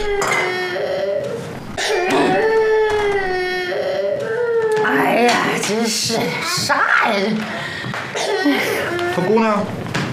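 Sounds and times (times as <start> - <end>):
baby crying: 0.0 - 5.6, 8.2 - 9.5
speech: 5.7 - 9.8.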